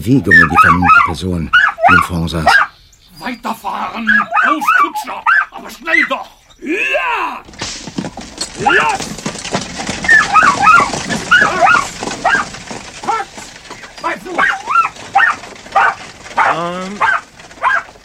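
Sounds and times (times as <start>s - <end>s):
speech: 0.0s - 2.7s, 3.3s - 9.2s, 16.6s - 17.1s
spaniel yipping, whining and barking excitedly: 0.3s - 2.8s, 3.8s - 6.1s, 10.0s - 13.3s, 14.4s - 18.0s.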